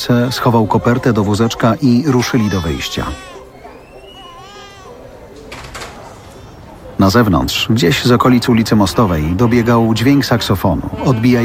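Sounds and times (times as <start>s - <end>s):
speech: 0.0s - 3.3s, 7.0s - 11.4s
infant crying in a busy branch: 0.0s - 5.1s, 10.8s - 11.4s.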